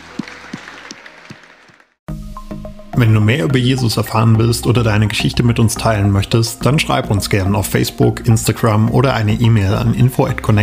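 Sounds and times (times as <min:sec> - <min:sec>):
audience applause: 0:00.0 - 0:02.0
speech: 0:03.0 - 0:10.6.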